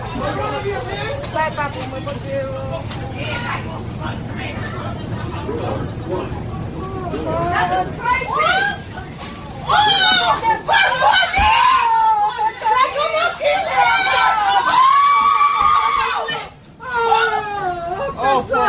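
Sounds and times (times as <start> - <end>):
agitated crowd noise on a bus: 0.0 - 18.6
women yelling and screaming on a bus during an attack: 7.4 - 9.0, 9.6 - 18.6.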